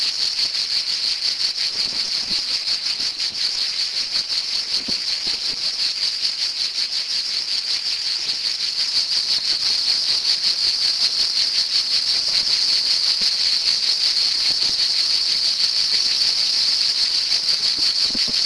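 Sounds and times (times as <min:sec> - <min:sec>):
cicada song: 0:00.0 - 0:18.4.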